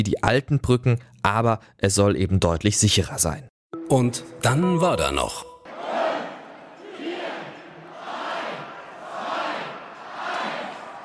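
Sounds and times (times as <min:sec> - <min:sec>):
speech: 0:00.0 - 0:06.0
carnival crowd cheering and chanting on a city square in Mainz: 0:05.6 - 0:11.0.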